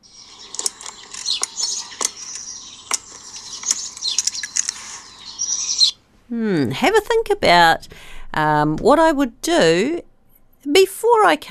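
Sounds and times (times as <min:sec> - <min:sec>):
sharp irregular clicking sounds: 0:00.0 - 0:05.9
dense chorus of birds chirping and singing in the morning: 0:00.0 - 0:06.0
speech: 0:06.3 - 0:11.4.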